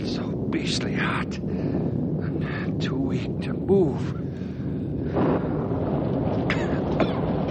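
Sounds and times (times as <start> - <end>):
steady rain pouring: 0.0 - 7.4
speech: 0.6 - 2.0.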